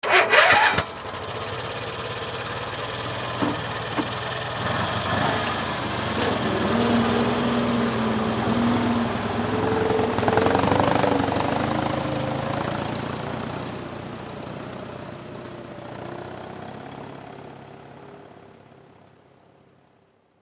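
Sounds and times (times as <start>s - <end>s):
swamp buggy engine starting up and driving away: 0.0s - 19.3s.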